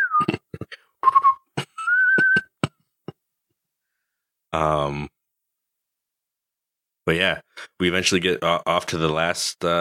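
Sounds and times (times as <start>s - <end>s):
short whistled signal of three clear notes: 1.0s - 2.5s
speech: 4.5s - 5.1s, 7.1s - 9.7s.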